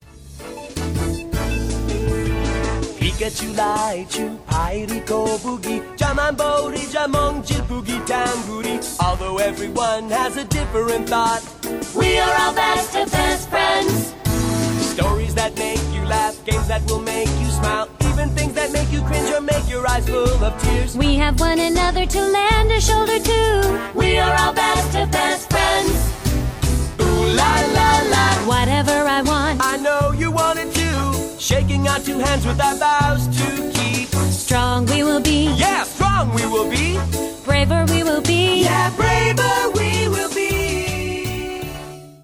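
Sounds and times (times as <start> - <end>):
opening song: 0.2 - 42.0.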